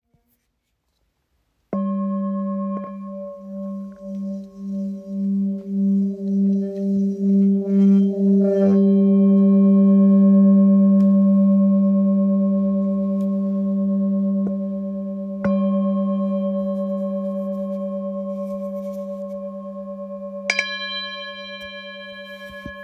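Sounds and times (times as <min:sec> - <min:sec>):
singing bowl in G: 0:01.8 - 0:22.8.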